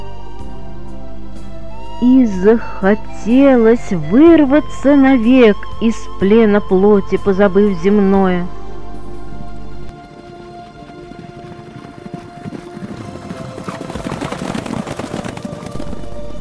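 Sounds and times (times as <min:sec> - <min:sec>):
low drone: 0:00.0 - 0:11.7, 0:15.5 - 0:16.3
speech: 0:02.0 - 0:08.6
several horses galloping: 0:09.9 - 0:16.3.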